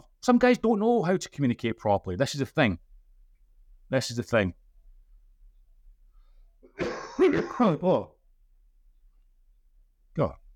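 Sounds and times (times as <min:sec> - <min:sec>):
speech: 0:00.2 - 0:02.9, 0:03.9 - 0:04.6, 0:06.8 - 0:08.1, 0:10.2 - 0:10.4
harsh throat clearing: 0:06.6 - 0:08.1
person coughing in a fit: 0:06.6 - 0:08.1.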